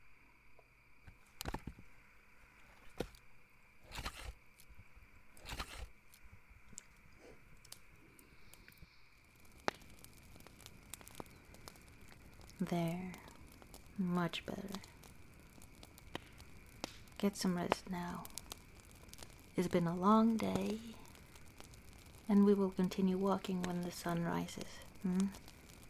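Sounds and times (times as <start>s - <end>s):
faint steady hiss: 0.0s - 25.8s
small campfire crackling: 0.0s - 25.8s
twigs snapping while gathering sticks: 3.9s - 4.7s, 5.4s - 7.0s, 8.5s - 25.8s
speech: 12.6s - 13.2s, 14.0s - 14.9s, 17.2s - 18.4s, 19.6s - 21.0s, 22.3s - 25.4s.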